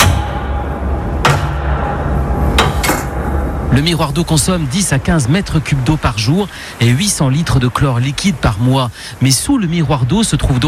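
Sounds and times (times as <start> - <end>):
heavy floor hatch beneath a water mirror opened with sharp metallic knocks and thuds: 0.0 - 3.4
steady low rumble of machinery: 0.0 - 7.3
speech: 3.7 - 10.6.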